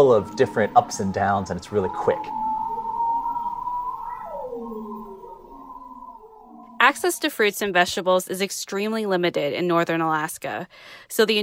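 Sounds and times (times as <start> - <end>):
speech: 0.0 - 2.4, 6.9 - 11.4
bearded seal singing underwater: 0.0 - 7.5.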